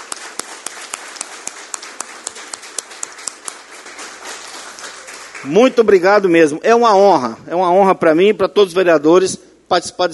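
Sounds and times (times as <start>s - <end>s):
audience applauding: 0.0s - 6.0s
speech: 5.4s - 10.1s.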